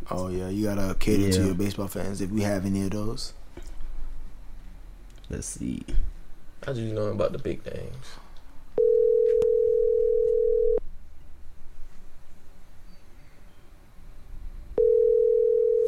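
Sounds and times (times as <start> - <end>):
speech: 0.1 - 3.4, 5.3 - 8.2
phone ringback tone: 8.8 - 10.8, 14.8 - 15.8.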